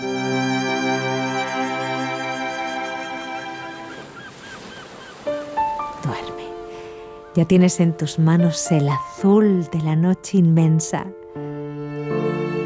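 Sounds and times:
ocean waves and surf: 0.0s - 7.9s
seagull calls and squawks: 2.4s - 5.8s
speech: 7.4s - 11.2s.

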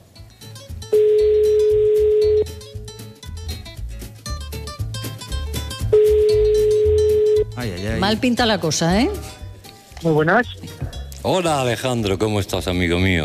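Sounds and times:
telephone call ringing on a call-in line: 0.9s - 2.6s, 6.0s - 7.5s
speech: 8.1s - 9.3s, 10.0s - 10.6s, 11.2s - 13.2s.

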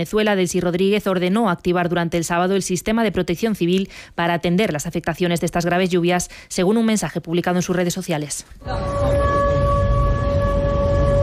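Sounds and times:
speech: 0.0s - 9.4s
air raid sirens sounding at night over Krasnodar during a drone attack: 8.6s - 11.2s.

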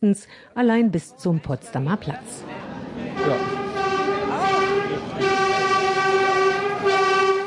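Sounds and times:
speech: 0.0s - 2.6s, 3.2s - 3.6s
Berlin S-Bahn S15 commuter train running on rails: 1.4s - 7.4s.

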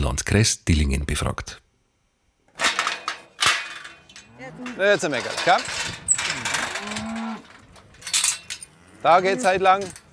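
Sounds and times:
speech: 0.1s - 1.6s, 4.7s - 6.0s, 9.0s - 10.0s
faint mechanical rattle: 2.5s - 10.1s
cow mooing on an organic farm in Swabia: 4.3s - 4.8s, 6.2s - 7.7s, 8.6s - 9.8s.

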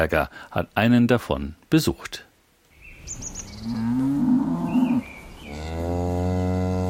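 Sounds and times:
speech: 0.0s - 2.3s, 3.1s - 4.2s
faint bird chirps: 2.7s - 3.9s, 4.6s - 5.6s
Pinzgauer cattle mooing on a pasture: 3.6s - 6.8s.

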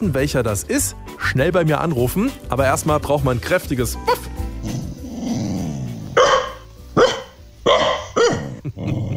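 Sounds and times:
speech: 0.0s - 4.8s
dog growling low: 4.6s - 6.2s, 7.7s - 9.1s
dog barking sharply: 6.2s - 8.6s.

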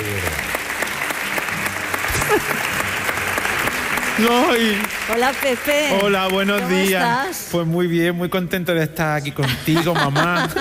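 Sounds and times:
crowd applauding: 0.0s - 7.5s
laughter: 2.0s - 3.0s, 9.3s - 10.5s
speech: 4.2s - 10.5s.

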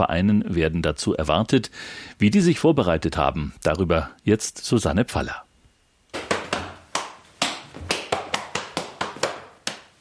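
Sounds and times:
speech: 0.0s - 5.5s
boy slapping thighs and shoes in Schuhplattler dancing: 6.1s - 9.9s.

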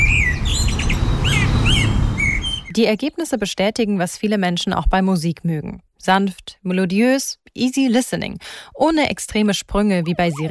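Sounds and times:
blackbird song: 0.0s - 2.8s
speech: 2.8s - 10.4s.

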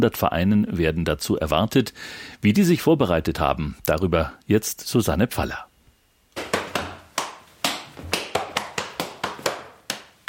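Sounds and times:
speech: 0.0s - 5.7s
boy in lederhosen slapping thighs and shoes practising the Schuhplattler dance: 6.4s - 10.2s.

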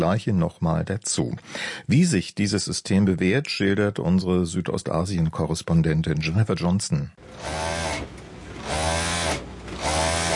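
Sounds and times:
speech: 0.0s - 8.1s
sewing machine motor whirring: 7.2s - 10.3s.

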